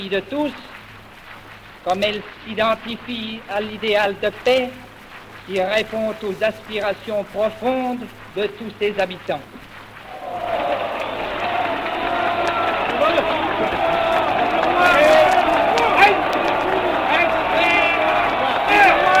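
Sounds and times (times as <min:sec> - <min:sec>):
speech: 0:00.0 - 0:00.7, 0:01.8 - 0:04.9, 0:05.5 - 0:09.6
large crowd cheering after a speech: 0:10.0 - 0:19.1.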